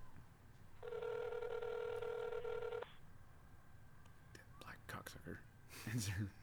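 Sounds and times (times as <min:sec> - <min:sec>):
phone call ringing tone on speakerphone: 0:00.8 - 0:03.0
soft whispery voices: 0:04.2 - 0:06.4.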